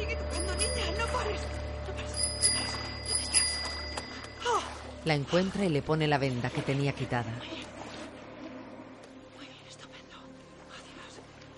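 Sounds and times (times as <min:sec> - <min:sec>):
bicycle bell ringing: 0:00.0 - 0:04.9
low steady hum: 0:00.0 - 0:11.5
speech: 0:05.0 - 0:07.5.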